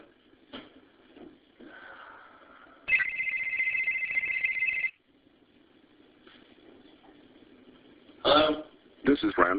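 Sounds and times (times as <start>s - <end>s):
cell phone text message soft electronic tone: 2.9s - 4.9s
cell phone bright steady buzzing ring: 2.9s - 5.0s
speech: 9.2s - 9.5s.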